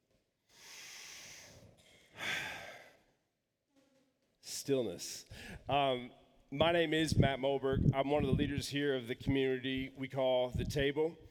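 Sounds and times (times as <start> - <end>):
deep breath drawn in during a church gathering: 0.5 - 3.0, 5.3 - 5.6
speech: 4.7 - 11.2.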